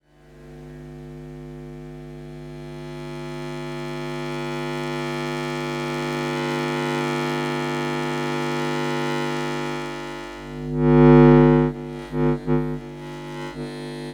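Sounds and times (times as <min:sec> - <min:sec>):
long buzzing power glitch: 0:03.7 - 0:14.1.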